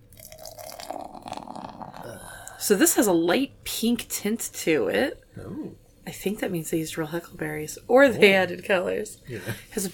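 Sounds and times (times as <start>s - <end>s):
beer pouring from a can into a glass: 0.0s - 2.2s
fizzy crackle of beer filling a glass: 0.1s - 2.2s
speech: 2.6s - 9.9s.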